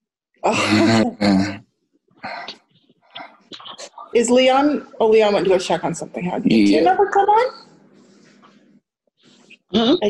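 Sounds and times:
speech: 0.4 - 1.6, 4.2 - 7.7, 9.7 - 10.0
harsh throat-clearing coughs: 0.4 - 1.7.

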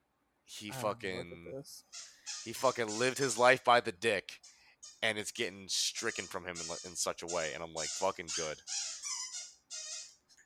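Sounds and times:
speech: 0.5 - 9.0
puppy squeaking: 6.1 - 10.2.

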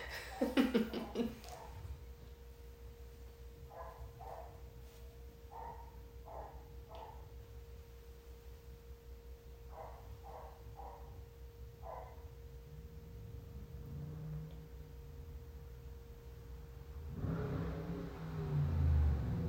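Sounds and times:
laughter: 0.0 - 1.6
steady low hum: 0.0 - 19.4
dog barking: 1.1 - 1.8, 3.7 - 4.7, 5.5 - 7.3, 9.7 - 11.2, 11.8 - 12.3.

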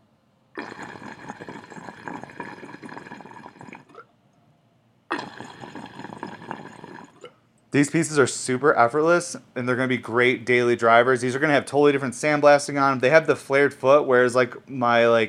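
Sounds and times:
water bubbling through a glass pipe disc percolator: 0.6 - 4.1, 5.1 - 7.3
speech: 7.8 - 15.2.

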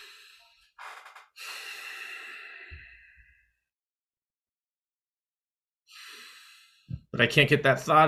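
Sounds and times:
person breathing deeply: 0.0 - 3.6, 5.9 - 7.1
speech: 7.2 - 8.0.

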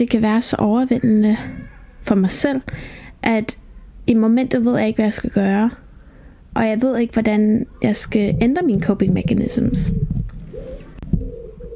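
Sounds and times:
speech: 0.0 - 5.8, 6.6 - 10.1
dove cooing on a balcony: 7.7 - 11.7.

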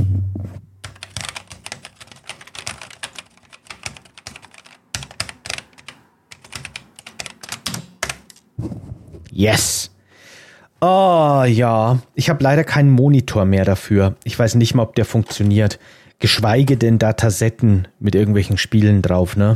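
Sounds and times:
typing on the keyboard of an old Schneider CPC home computer: 0.8 - 8.4
speech: 9.4 - 9.9, 10.8 - 19.5.

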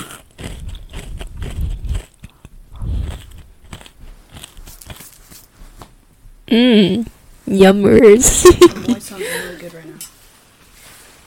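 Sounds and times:
chewing a crisp marshmallow snack: 0.0 - 5.5
speech: 6.5 - 10.1.

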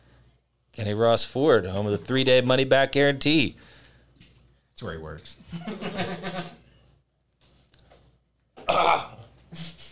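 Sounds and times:
speech: 0.8 - 3.8, 4.8 - 6.6
laughter: 5.5 - 6.6
person clearing throat with something stuck in it: 8.6 - 9.3
person coughing with something stuck in throat: 8.6 - 9.3.

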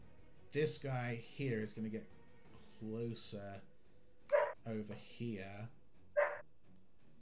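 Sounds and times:
speech: 0.5 - 2.2, 2.8 - 3.7, 4.7 - 5.8
dog barking: 4.3 - 4.5, 6.2 - 6.4.

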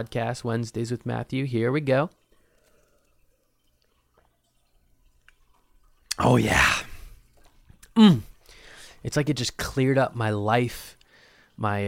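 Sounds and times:
speech: 0.0 - 2.2, 6.2 - 6.9, 8.0 - 8.3, 9.0 - 11.0, 11.6 - 11.8
sipping a drink: 2.1 - 9.0.

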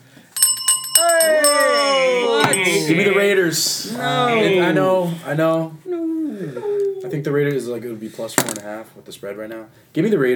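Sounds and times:
bright metallic bell ringing: 0.0 - 3.4
speech: 2.6 - 5.8, 6.4 - 10.3.

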